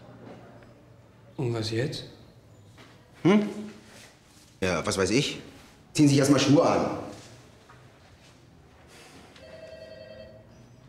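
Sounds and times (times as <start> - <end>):
speech: 1.4 - 2.2, 3.2 - 3.8, 4.6 - 7.1
telephone bell ringing: 9.4 - 10.7.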